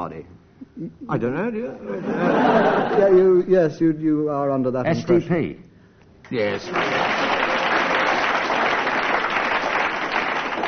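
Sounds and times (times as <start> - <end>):
speech: 0.0 - 5.7, 6.3 - 7.3
laughter: 1.8 - 3.4
studio audience applause: 6.4 - 10.6.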